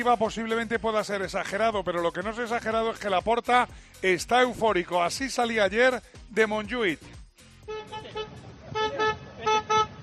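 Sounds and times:
speech: 0.0 - 7.2
car horn honking to cheer on football fans: 7.6 - 10.0.

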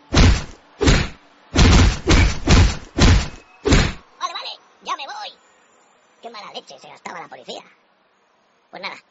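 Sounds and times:
heavy booming thumps of blows landing: 0.0 - 4.0
speech: 6.2 - 7.8, 8.7 - 9.0.

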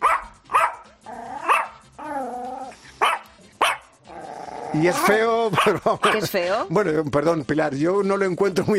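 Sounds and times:
Yorkshire Terrier barking: 0.0 - 1.8, 3.0 - 3.9, 5.5 - 6.3
Yorkshire Terrier whiny growl: 1.0 - 2.9, 4.1 - 5.2
speech: 4.7 - 8.7.

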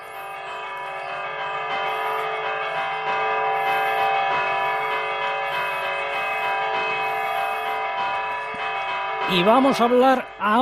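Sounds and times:
church bells pealing: 0.0 - 10.6
speech: 9.3 - 10.6.

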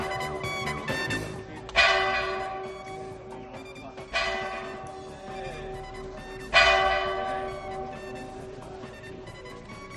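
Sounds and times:
town hall clock bell striking: 0.0 - 0.5, 1.7 - 9.9.

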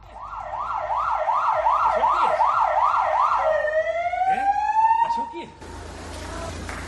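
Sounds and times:
police car siren yelping and wailing: 0.0 - 5.4.

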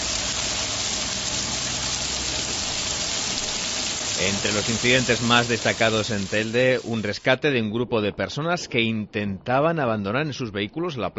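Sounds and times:
heavy rain with hail: 0.0 - 7.2
speech: 4.2 - 11.1.

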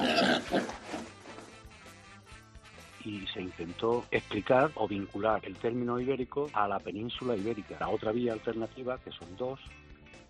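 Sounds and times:
Iberian pig grunting and snorting: 0.0 - 1.3
speech: 3.1 - 9.8.

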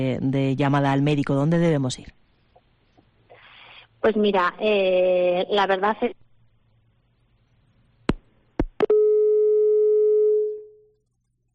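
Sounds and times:
speech: 0.0 - 2.2, 4.0 - 6.2
telephone busy tone after a lost phone connection: 8.9 - 10.8.

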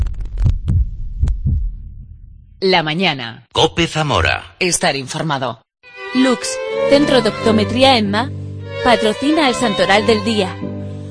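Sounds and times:
heartbeat sound effect: 0.0 - 2.6
speech: 2.6 - 10.7.

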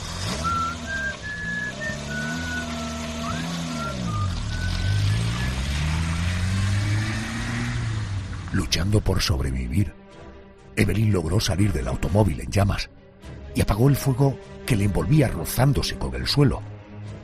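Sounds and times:
car engine rumbling as it drives away: 0.0 - 9.4
thin intermittent whistling tone: 0.2 - 6.1
speech: 8.6 - 10.0, 10.8 - 16.7.

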